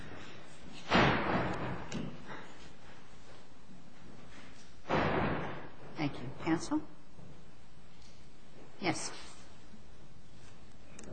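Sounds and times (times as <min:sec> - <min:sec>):
courtroom door shutting with a solid thud: 0:00.9 - 0:02.2, 0:04.9 - 0:05.8
speech: 0:06.6 - 0:07.0, 0:08.9 - 0:09.2.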